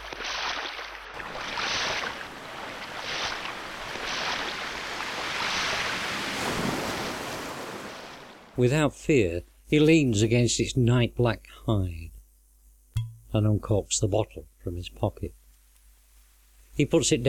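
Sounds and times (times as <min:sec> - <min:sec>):
ocean waves washing onto sand: 0:00.0 - 0:08.4
speech: 0:08.6 - 0:12.2, 0:13.3 - 0:15.4, 0:16.8 - 0:17.2.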